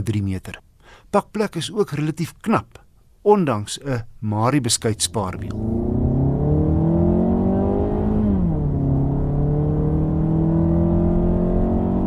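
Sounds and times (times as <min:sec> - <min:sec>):
speech: 0:00.0 - 0:06.0
115 kW 2-litre engine of a CX3 crossover droning under acceleration: 0:04.8 - 0:12.0.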